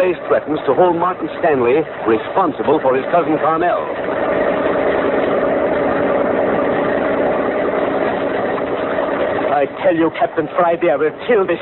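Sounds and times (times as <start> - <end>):
speech: 0.0 - 4.7, 9.6 - 11.6
police motor launch engine idling on San Francisco Bay: 0.0 - 11.6.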